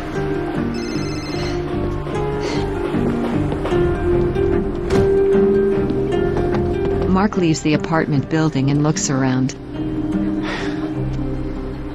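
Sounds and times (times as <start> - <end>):
music: 0.0 - 11.9
cell phone ringing with a short electronic trill: 0.7 - 1.6
speech: 7.2 - 9.6.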